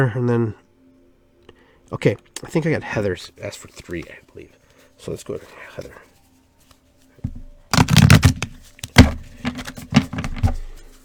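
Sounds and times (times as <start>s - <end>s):
speech: 0.0s - 0.6s, 1.9s - 6.1s
deck of cards being shuffled for a card reading: 7.3s - 10.9s.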